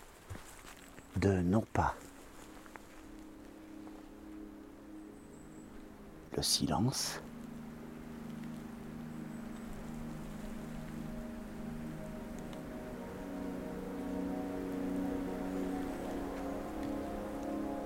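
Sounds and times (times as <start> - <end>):
continuous hiss like rain or rushing water in a valley: 0.0 - 17.8
speech: 1.2 - 2.0, 6.4 - 7.3
low droning hum in a valley: 2.1 - 17.8.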